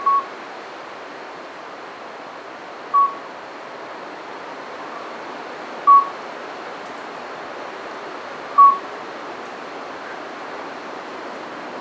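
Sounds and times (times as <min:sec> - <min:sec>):
Midwife toad calls: 0:03.0 - 0:03.2, 0:08.6 - 0:08.8.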